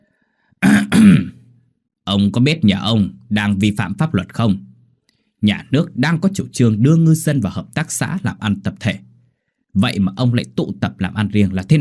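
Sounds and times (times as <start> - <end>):
man clearing his throat threateningly: 0.6 - 1.5
speech: 2.1 - 4.7, 5.4 - 9.1, 9.8 - 11.8.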